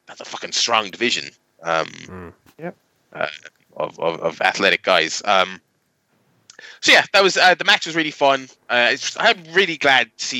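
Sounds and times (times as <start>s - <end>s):
speech: 0.2s - 5.7s, 6.6s - 10.3s
person burping into a microphone: 1.6s - 2.5s, 3.2s - 3.5s
voiced grunts and murmurs: 1.6s - 2.5s.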